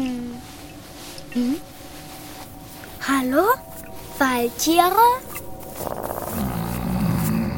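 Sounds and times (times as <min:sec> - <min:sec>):
speech: 0:01.4 - 0:01.7, 0:03.2 - 0:06.0
wolf growling in a forest: 0:05.7 - 0:07.5.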